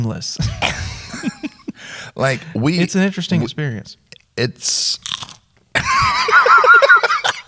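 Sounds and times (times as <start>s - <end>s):
speech: 0.0s - 0.8s, 2.2s - 5.1s
laughter: 0.4s - 2.5s, 5.8s - 7.4s
loud crunching of chewed deep-fried shrimp-flavoured peanuts: 4.9s - 5.5s.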